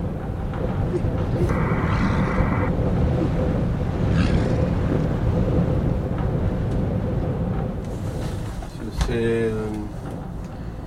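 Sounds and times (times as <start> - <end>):
strong wind roaring around a wooden cabin facing the sea ice: 0.0 - 10.8
short creaking tonal sound: 0.1 - 7.8.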